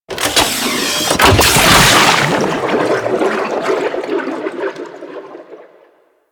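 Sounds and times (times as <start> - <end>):
reactor coolant cell insertion: 0.1 - 3.6.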